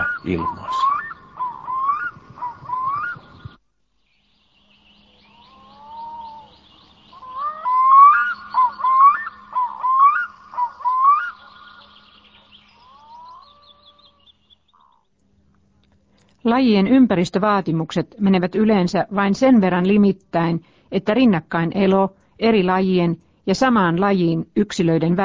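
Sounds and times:
black-throated loon calling: 0:00.0 - 0:03.6, 0:04.5 - 0:15.1
speech: 0:00.2 - 0:00.8, 0:16.6 - 0:25.2.

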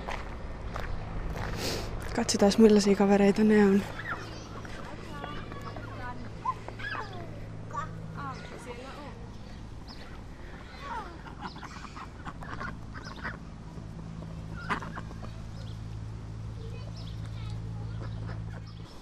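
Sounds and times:
low steady hum: 0:00.0 - 0:19.0
speech: 0:02.2 - 0:04.0
group of ducks quacking and chattering: 0:03.8 - 0:13.6, 0:14.2 - 0:15.8, 0:17.8 - 0:19.0.

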